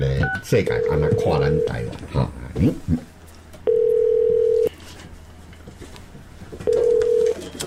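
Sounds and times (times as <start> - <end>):
speech: 0.0 - 3.1
telephone line tone while placing a call: 0.7 - 1.9, 3.7 - 4.7, 6.7 - 7.5.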